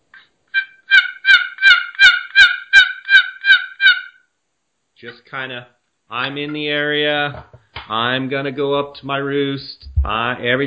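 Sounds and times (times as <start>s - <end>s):
turkey hen loafing calls imitated on a wooden box call: 0.5s - 4.3s
speech: 5.0s - 10.6s.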